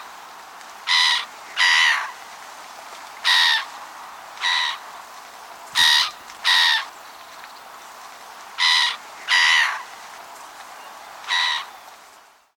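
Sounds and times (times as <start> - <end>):
black-headed gull calling: 0.9 - 2.1, 4.4 - 4.8, 5.8 - 6.9, 8.6 - 9.8, 11.2 - 11.8.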